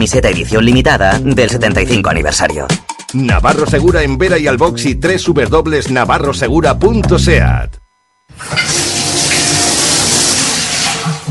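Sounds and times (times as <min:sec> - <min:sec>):
speech: 0:00.0 - 0:08.8
water gushing from a tap: 0:08.4 - 0:11.3.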